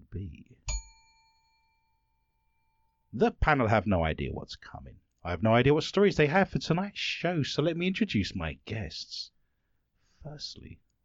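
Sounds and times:
bell ding: 0.7s - 3.1s
speech: 3.2s - 9.4s, 10.2s - 11.0s.

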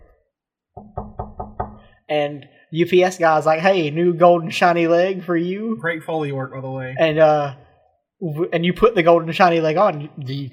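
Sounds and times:
firm knocking on a door: 0.8s - 1.9s
speech: 2.1s - 7.6s, 8.2s - 10.5s.

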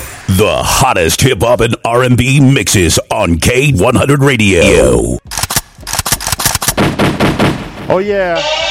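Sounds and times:
speech: 0.4s - 5.4s, 7.9s - 8.6s
gunshot sound effect, rapid volley of cracks: 6.1s - 8.1s.

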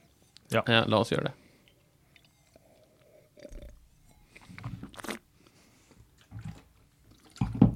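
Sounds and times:
speech: 0.5s - 1.4s
still dry wine being sipped and slurped during a tasting: 1.6s - 5.3s.

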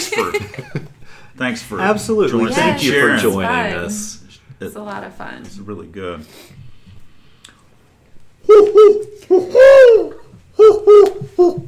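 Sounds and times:
speech: 0.2s - 6.6s, 8.5s - 11.6s
owl hooting: 8.4s - 11.6s.

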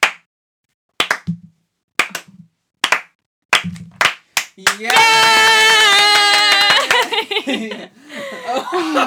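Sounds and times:
slow deliberate hand clapping: 1.0s - 1.3s, 2.0s - 7.3s
whooping voices: 4.9s - 7.1s
loud laughter: 5.0s - 9.0s.

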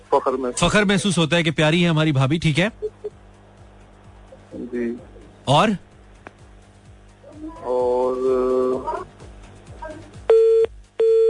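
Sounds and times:
speech: 0.1s - 2.9s, 4.6s - 5.9s, 7.4s - 9.1s
electronic phone disconnect tones after a call cut: 10.3s - 11.2s.

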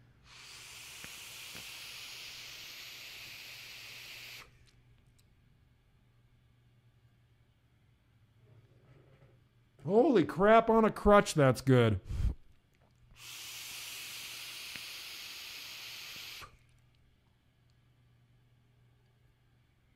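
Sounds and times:
hiss of vaping e-liquid from a new mech mod: 0.0s - 4.6s, 12.0s - 12.4s, 13.1s - 16.7s
speech: 9.9s - 12.2s.

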